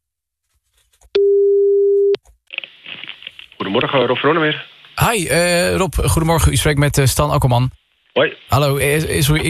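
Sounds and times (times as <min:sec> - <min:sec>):
telephone ringing tone while placing a call: 0:01.2 - 0:02.2
speech: 0:03.8 - 0:09.4.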